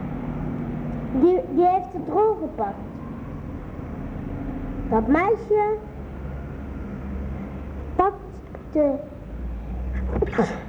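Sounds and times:
low hum: 0:00.0 - 0:10.6
speech: 0:01.2 - 0:02.9, 0:04.9 - 0:05.9, 0:08.0 - 0:09.1, 0:10.3 - 0:10.6
person sneezing: 0:10.0 - 0:10.6.

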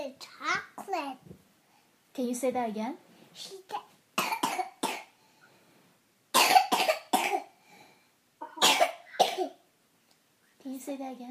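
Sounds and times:
speech: 0:02.2 - 0:03.8, 0:10.8 - 0:11.3
person coughing: 0:04.2 - 0:05.1, 0:06.4 - 0:07.5, 0:08.4 - 0:09.6.

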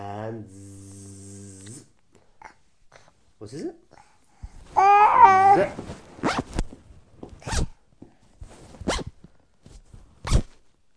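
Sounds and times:
speech: 0:03.4 - 0:03.9, 0:05.5 - 0:06.0
zipper pulled quickly up and down: 0:05.1 - 0:06.8, 0:07.4 - 0:07.8, 0:08.7 - 0:09.2, 0:10.2 - 0:10.6.

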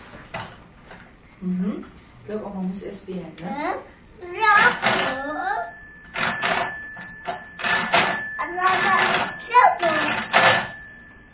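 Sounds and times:
speech: 0:01.4 - 0:04.0
telephone ringing with a bright repeated bell tone: 0:04.4 - 0:11.3.

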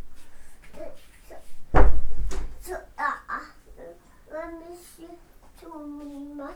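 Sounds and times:
child talking: 0:00.6 - 0:01.6, 0:02.5 - 0:06.5
door slamming shut with a loud thud: 0:01.6 - 0:02.6.

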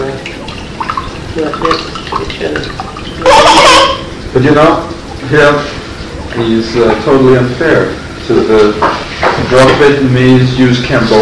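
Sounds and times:
liquid pouring from a punctured can: 0:00.0 - 0:08.7
speech: 0:01.4 - 0:05.8, 0:06.4 - 0:11.2.

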